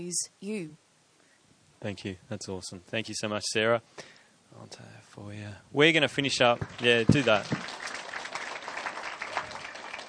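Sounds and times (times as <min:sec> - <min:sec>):
speech: 0:00.0 - 0:00.8, 0:01.8 - 0:07.9
crowd applauding: 0:06.3 - 0:10.0.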